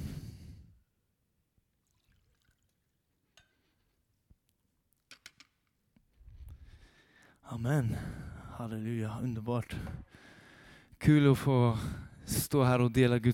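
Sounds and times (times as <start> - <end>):
water pouring into a glass: 1.8 - 3.0
speech: 7.5 - 10.3, 11.0 - 13.3.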